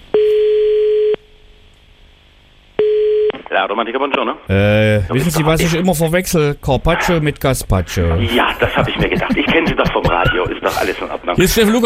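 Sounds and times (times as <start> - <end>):
telephone line tone before dialling again: 0.2 - 1.2, 2.8 - 3.3
speech: 3.6 - 11.8
laughter: 8.1 - 11.8.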